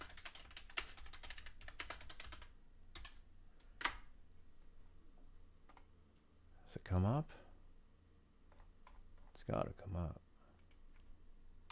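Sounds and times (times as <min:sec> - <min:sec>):
typing on a computer keyboard: 0:00.0 - 0:03.2, 0:10.6 - 0:11.1
speech: 0:06.8 - 0:07.5, 0:09.5 - 0:10.2.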